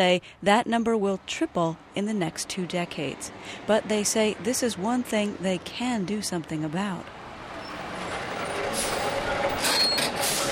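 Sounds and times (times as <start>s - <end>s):
speech: 0.0s - 7.2s
heavy-duty diesel truck rumbling near the ports of Los Angeles and Long Beach: 0.0s - 10.4s.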